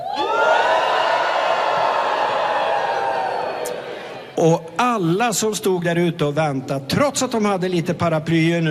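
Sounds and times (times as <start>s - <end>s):
crowd of students cheering loudly: 0.0s - 4.4s
speech: 4.4s - 8.6s.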